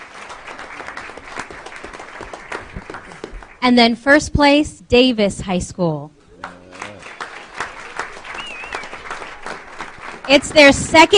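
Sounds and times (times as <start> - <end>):
crowd clapping: 0.0 - 3.6, 6.4 - 11.1
speech: 3.6 - 6.2, 10.3 - 11.1.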